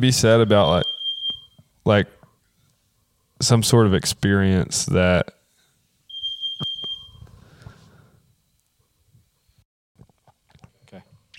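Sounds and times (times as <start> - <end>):
speech: 0.0 - 0.9, 1.8 - 2.2, 3.4 - 5.4
carbon monoxide alarm high-pitched electronic beep: 0.4 - 1.6, 6.1 - 7.3.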